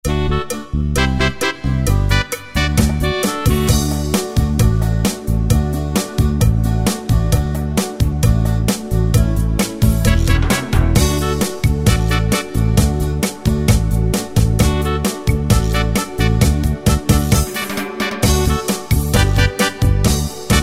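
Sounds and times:
cha cha preset style on a Yamaha QY70 sequencer: 0.1 - 20.6.

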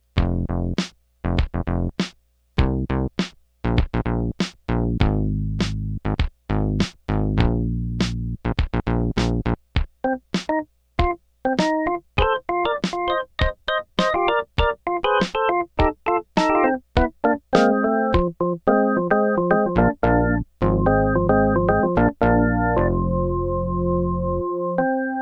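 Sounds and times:
bass: 0.0 - 9.8, 16.3 - 25.1
drums: 0.0 - 18.4
organ: 10.0 - 25.1.

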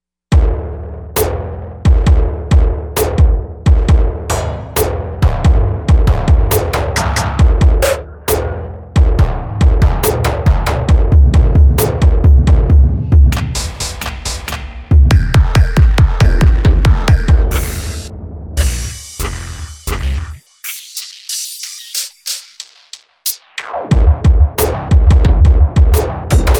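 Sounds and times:
grind drums: 0.3 - 26.5.

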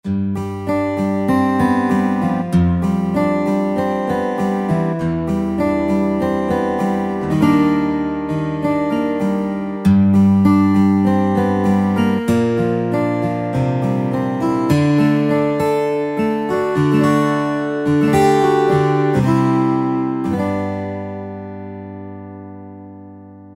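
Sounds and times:
12 string guitar voice on a keyboard: 0.0 - 23.5.

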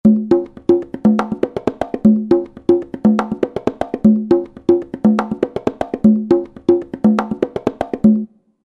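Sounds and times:
Latin world music conga loop: 0.0 - 8.4.

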